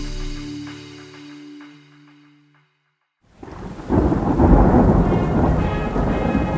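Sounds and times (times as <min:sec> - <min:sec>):
heavy rain pouring: 0:03.3 - 0:06.5
deep rumble of thunder: 0:03.4 - 0:06.5.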